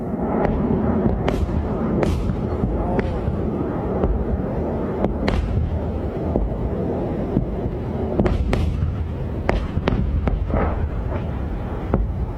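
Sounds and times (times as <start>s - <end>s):
PAC-3 Patriot interceptor missiles firing at incoming drones and missiles in Bahrain: 0.0s - 12.3s
loud rushing wind-like rumble: 0.0s - 12.3s.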